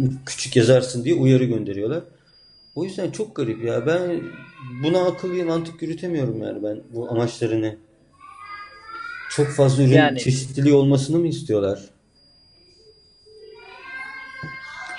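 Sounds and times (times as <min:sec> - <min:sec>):
adult speaking: 0:00.0 - 0:02.1, 0:02.8 - 0:07.8, 0:09.3 - 0:11.8
speech: 0:00.0 - 0:02.2, 0:02.8 - 0:07.8, 0:09.3 - 0:11.9
children's voices chattering: 0:03.0 - 0:07.2, 0:08.2 - 0:09.9, 0:13.3 - 0:14.9.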